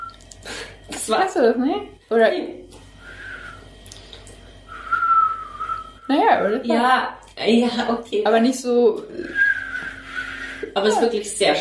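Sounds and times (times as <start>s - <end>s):
speech: 1.1s - 2.7s, 6.1s - 9.4s, 10.8s - 11.5s
person whistling two short breathy tones: 3.0s - 3.6s, 4.7s - 6.1s, 9.3s - 10.7s.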